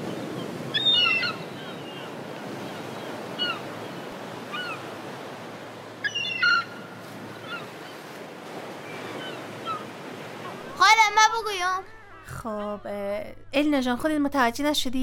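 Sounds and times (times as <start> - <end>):
sea waves washing: 0.0 - 11.8
seagulls calling: 0.0 - 13.0
speech: 11.4 - 15.0.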